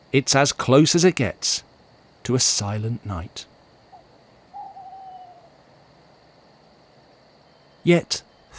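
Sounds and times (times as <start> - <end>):
quiet night hiss in the streets: 0.0 - 8.5
speech: 0.1 - 3.5, 7.8 - 8.5
owl screech at night in the streets: 3.9 - 5.6.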